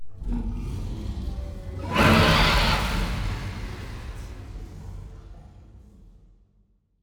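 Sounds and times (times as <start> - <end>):
aquatic dragon death cry: 1.8 - 4.0.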